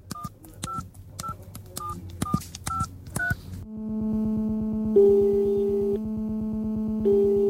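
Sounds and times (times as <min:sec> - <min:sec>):
telephone keypad tones: 0:00.1 - 0:03.4
steady low electronic tone with higher tones in long bursts: 0:03.7 - 0:07.4.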